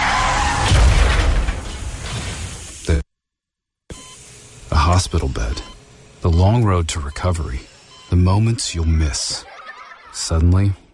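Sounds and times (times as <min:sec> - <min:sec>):
car crash: 0:00.0 - 0:02.8
speech: 0:05.1 - 0:09.5, 0:10.1 - 0:10.8
laughter: 0:09.2 - 0:10.4.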